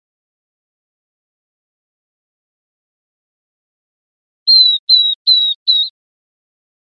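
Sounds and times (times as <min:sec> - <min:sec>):
Northern beardless-tyrannulet whistling: 0:04.5 - 0:05.9.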